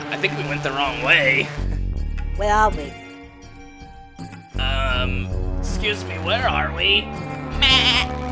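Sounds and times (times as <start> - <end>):
speech: 0.1 - 1.7, 2.4 - 3.0, 5.0 - 8.2
goat bleating: 7.5 - 8.1.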